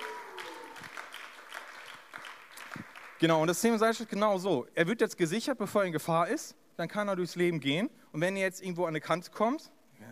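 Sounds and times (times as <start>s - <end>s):
audience clapping: 0.0s - 4.0s
speech: 3.2s - 9.8s.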